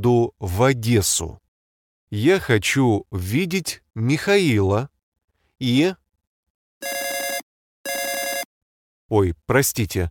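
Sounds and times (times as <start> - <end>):
speech: 0.0 - 1.4, 2.1 - 4.9, 5.6 - 6.0, 6.8 - 7.0, 9.1 - 10.0
telephone ringing for an incoming call: 6.8 - 8.5.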